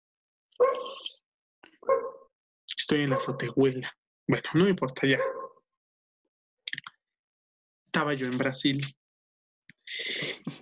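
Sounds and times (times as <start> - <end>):
neighbors' dog barking across the street: 0.6 - 1.0, 1.8 - 2.3, 3.1 - 3.5, 5.2 - 5.6
speech: 2.9 - 5.4, 8.0 - 9.0.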